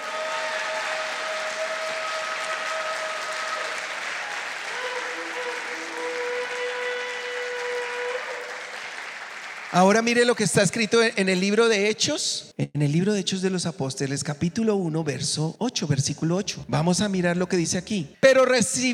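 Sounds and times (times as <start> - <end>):
audience applauding: 0.0 - 10.5
speech: 9.8 - 18.9.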